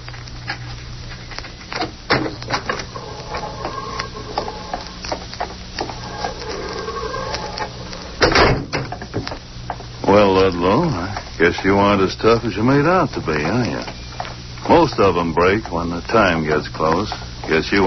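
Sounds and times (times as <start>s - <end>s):
heavy corridor door unlatched and pulled open with grinding creak: 2.1s - 4.8s, 5.8s - 9.2s
speech: 10.4s - 14.0s, 14.7s - 17.8s.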